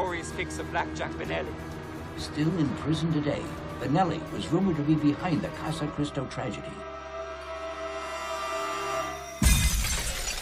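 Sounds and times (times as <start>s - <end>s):
steady engine-like drone with sustained tones: 0.0s - 10.3s
speech: 0.4s - 6.9s
dense noisy shattering and clattering debris: 9.4s - 10.3s
race car crash: 9.4s - 10.3s.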